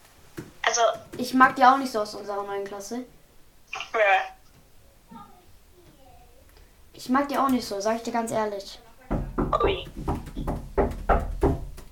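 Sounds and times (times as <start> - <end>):
speech: 1.2 - 3.2, 3.9 - 4.3, 7.0 - 8.8, 9.6 - 10.2
knocking on a door: 9.1 - 11.9.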